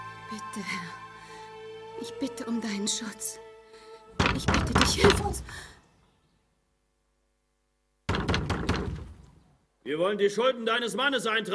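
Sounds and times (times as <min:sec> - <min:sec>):
speech: 0:00.3 - 0:01.0, 0:02.0 - 0:03.5, 0:04.2 - 0:05.8, 0:09.8 - 0:11.5
someone pounding hard on a wooden door: 0:04.2 - 0:05.5, 0:08.1 - 0:09.3.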